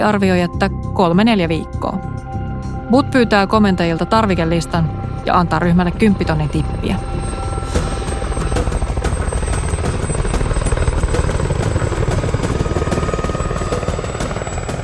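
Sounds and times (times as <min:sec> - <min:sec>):
speech: 0:00.0 - 0:02.3, 0:02.9 - 0:07.8
deep helicopter engine roar: 0:03.9 - 0:14.8
helicopter rotor chop: 0:07.2 - 0:14.8.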